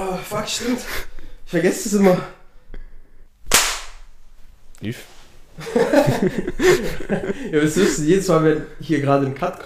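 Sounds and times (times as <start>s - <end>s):
speech: 0.2s - 2.4s, 4.8s - 9.6s
loud hand clap to sync a camera: 3.5s - 4.0s
laughter: 5.6s - 8.0s.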